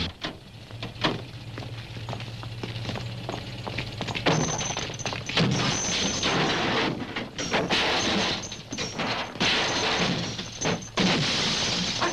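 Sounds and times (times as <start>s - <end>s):
clattering impacts: 0.2s - 12.1s
scooters being battered and broken apart: 4.0s - 12.1s.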